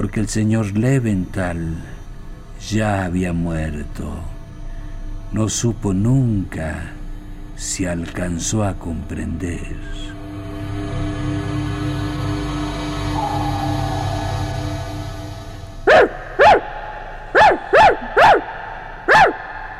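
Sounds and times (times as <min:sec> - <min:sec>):
speech: 0:00.0 - 0:01.9, 0:02.6 - 0:04.3, 0:05.3 - 0:07.0, 0:07.6 - 0:10.1
low steady hum: 0:00.0 - 0:19.7
dogs barking tensely: 0:15.9 - 0:19.7.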